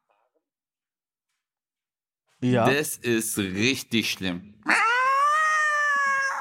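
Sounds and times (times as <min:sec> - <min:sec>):
speech: 0:02.4 - 0:04.6
voice imitating cats mating yowl: 0:04.6 - 0:06.3.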